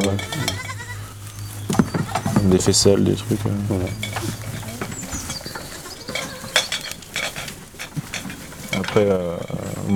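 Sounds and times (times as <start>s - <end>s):
goat bleating: 0.0s - 7.8s
faint murmur: 0.0s - 9.9s
speech: 0.1s - 0.6s, 2.4s - 4.4s, 9.0s - 9.9s.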